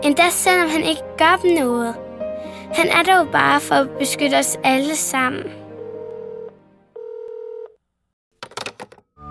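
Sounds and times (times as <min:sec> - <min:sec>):
speech: 0:00.0 - 0:02.1, 0:02.7 - 0:05.6
steady electronic telephone dialing tones: 0:05.8 - 0:07.8.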